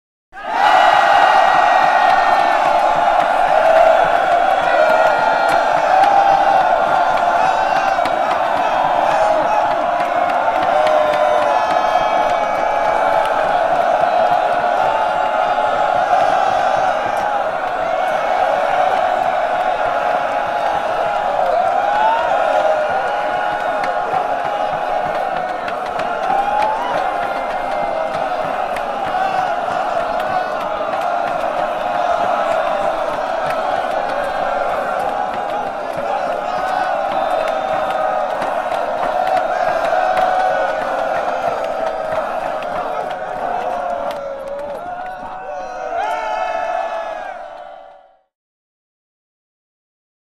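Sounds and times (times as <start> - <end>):
infantry crowd of men roaring: 0.4 - 48.2.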